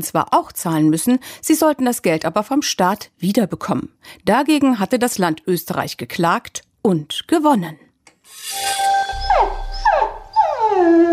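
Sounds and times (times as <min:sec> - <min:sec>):
speech: 0:00.0 - 0:07.8, 0:10.8 - 0:11.1
dog whining: 0:08.7 - 0:11.1.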